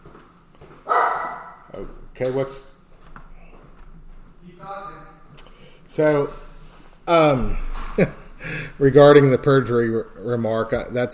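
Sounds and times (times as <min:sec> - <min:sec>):
dog barking: 0:00.9 - 0:01.7
speech: 0:01.8 - 0:02.7, 0:05.9 - 0:06.5, 0:07.1 - 0:11.1.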